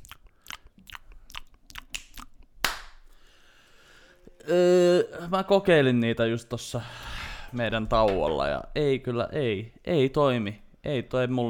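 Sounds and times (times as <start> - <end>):
ASMR-style wet mouth clicks and smacks: 0.0 - 2.9
sharper crunchy snap trailing into a soft hiss: 1.6 - 3.1
speech: 4.5 - 11.4.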